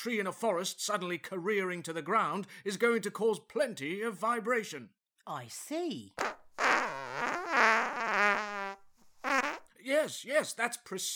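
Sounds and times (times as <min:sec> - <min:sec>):
speech: 0:00.0 - 0:06.4, 0:09.9 - 0:11.1
comedy fart machine noise: 0:06.2 - 0:09.7.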